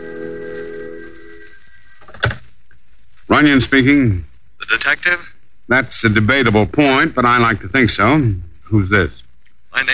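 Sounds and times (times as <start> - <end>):
old-fashioned telephone bell ringing in an office: 0.0 - 2.8
speech: 3.4 - 9.9.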